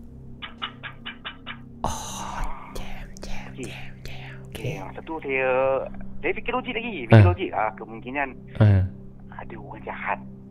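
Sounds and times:
low constant hum: 0:00.0 - 0:10.4
speech: 0:03.6 - 0:03.9, 0:04.6 - 0:08.8, 0:09.4 - 0:10.3
voice imitating knocking on a window: 0:08.6 - 0:08.9.

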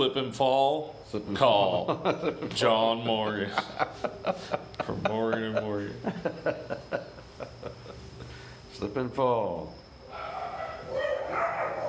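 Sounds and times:
speech: 0:00.0 - 0:07.1, 0:08.8 - 0:09.8
laughter: 0:01.6 - 0:08.3
dogs barking and yipping outdoors: 0:10.1 - 0:11.8.

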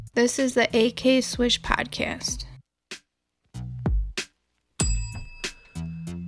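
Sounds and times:
speech: 0:00.1 - 0:02.5
bell ringing with bright metallic strikes: 0:04.8 - 0:06.1.

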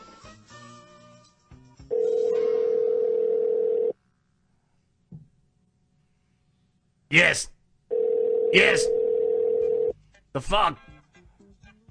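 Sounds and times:
outgoing telephone call ringback tone: 0:01.9 - 0:04.0, 0:07.9 - 0:09.9
speech: 0:07.1 - 0:07.6, 0:08.5 - 0:09.0, 0:10.4 - 0:10.9.

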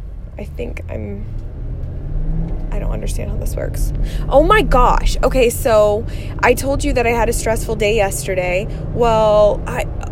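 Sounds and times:
car engine idling at a stop sign: 0:00.0 - 0:10.0
speech: 0:00.4 - 0:01.5, 0:02.4 - 0:10.0.

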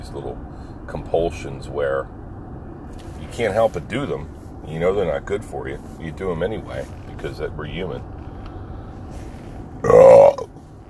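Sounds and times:
speech: 0:00.1 - 0:02.2, 0:02.9 - 0:08.1
faint trailing breath: 0:08.3 - 0:09.6
loud protein belch: 0:09.8 - 0:10.5.

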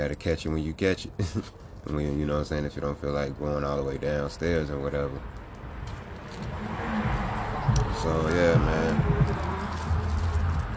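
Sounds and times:
speech: 0:00.0 - 0:05.4, 0:08.0 - 0:09.2
low rumble of traffic passing outside: 0:00.0 - 0:10.7
vehicle passing by with faint falling tone: 0:05.2 - 0:10.7.

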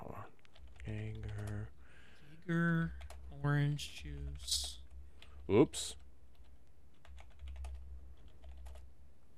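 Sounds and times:
typing on a computer keyboard: 0:00.4 - 0:01.7, 0:04.2 - 0:08.9
speech: 0:02.5 - 0:04.8, 0:05.5 - 0:06.0.

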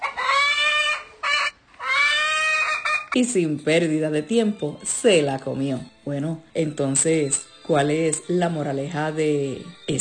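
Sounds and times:
hen clucking and squawking while scratching for food in early spring: 0:00.0 - 0:03.2
speech: 0:03.1 - 0:09.9.

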